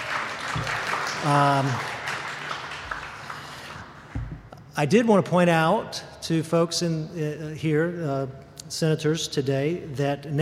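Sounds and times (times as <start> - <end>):
audience at a meeting applauding: 0.0 - 4.2
speech: 1.2 - 2.0, 4.8 - 10.4.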